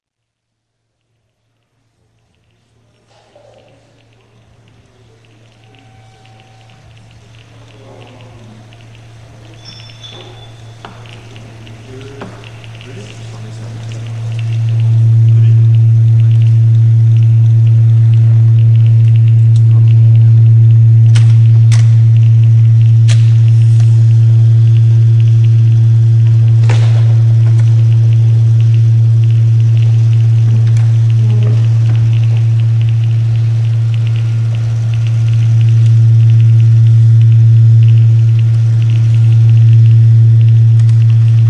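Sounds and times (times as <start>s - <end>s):
soundscape: 0.6s - 41.4s.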